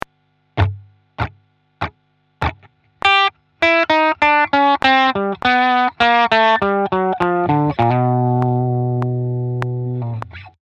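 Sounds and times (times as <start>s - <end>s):
blues guitar: 0.6s - 10.6s.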